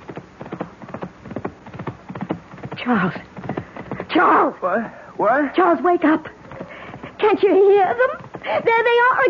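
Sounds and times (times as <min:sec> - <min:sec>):
horse hoofbeats: 0:00.0 - 0:04.5, 0:05.6 - 0:09.2
speech: 0:02.8 - 0:03.3, 0:04.1 - 0:06.4, 0:07.2 - 0:09.2.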